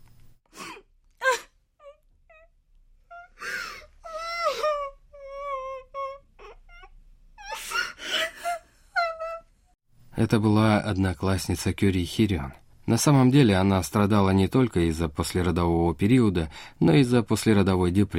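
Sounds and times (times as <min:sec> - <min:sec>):
woman crying with sobs gasps and quavering wails: 0:00.5 - 0:09.5
speech: 0:10.2 - 0:18.1.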